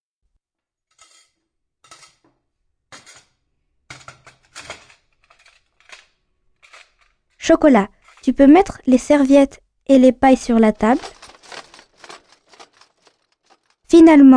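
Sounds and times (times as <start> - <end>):
plates, forks and spoons clattering as a table is set: 0.9 - 2.3, 2.9 - 7.2, 11.0 - 13.8
speech: 7.5 - 11.1, 14.1 - 14.3.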